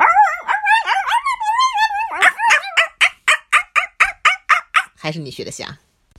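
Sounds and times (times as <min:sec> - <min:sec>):
dog whining and howling: 0:00.0 - 0:05.0
speech: 0:05.1 - 0:05.9.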